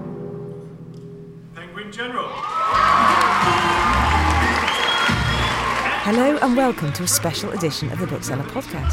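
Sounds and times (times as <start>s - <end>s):
large indoor awards ceremony crowd cheering and applauding: 2.2s - 8.9s
higher shouts from the crowd: 2.3s - 6.1s
speech: 6.4s - 8.9s.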